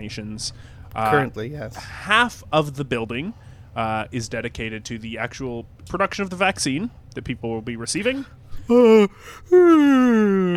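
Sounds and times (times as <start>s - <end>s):
speech: 0.0s - 10.5s
person yawning: 8.6s - 10.5s.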